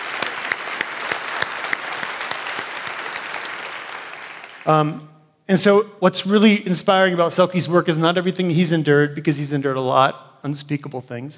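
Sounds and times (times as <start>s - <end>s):
audience applause: 0.0s - 4.9s
speech: 4.6s - 11.3s.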